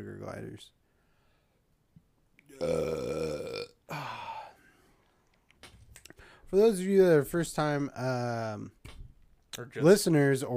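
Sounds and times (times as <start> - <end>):
speech: 0.0 - 0.8, 2.5 - 4.0, 6.5 - 8.8, 9.6 - 10.5
loud burp after beer: 2.5 - 4.5.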